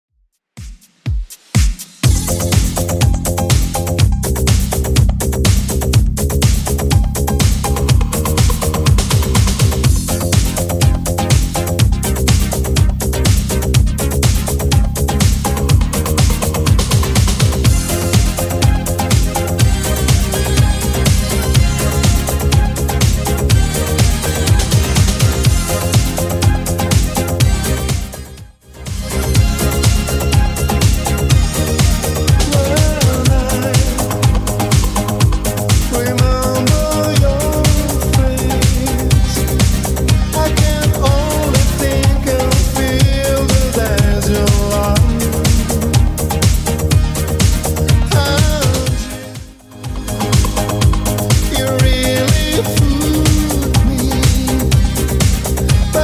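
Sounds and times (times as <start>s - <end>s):
80s Redrum drum machine beat: 0.3s - 56.0s.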